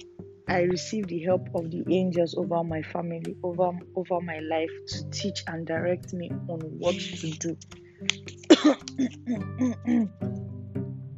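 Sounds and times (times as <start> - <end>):
speech: 0.5 - 10.4
person clearing throat: 8.2 - 10.1
person coughing: 8.2 - 10.1.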